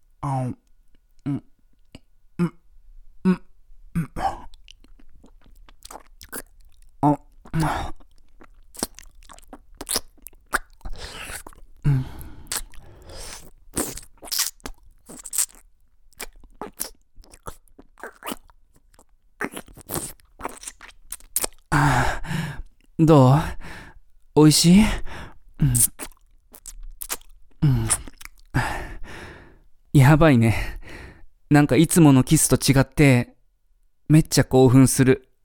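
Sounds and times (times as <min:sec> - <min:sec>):
speech: 0:00.2 - 0:00.6, 0:01.2 - 0:01.5, 0:23.0 - 0:23.6, 0:24.4 - 0:25.0, 0:30.1 - 0:30.8, 0:31.5 - 0:33.3, 0:34.1 - 0:35.3
wet mouth sounds of eating soft-serve ice cream: 0:04.0 - 0:21.8, 0:25.6 - 0:28.6.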